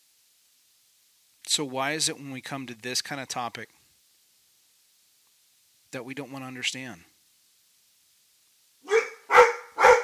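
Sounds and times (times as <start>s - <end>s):
speech: 1.6s - 3.8s, 5.9s - 7.1s
dog barking: 8.8s - 10.0s.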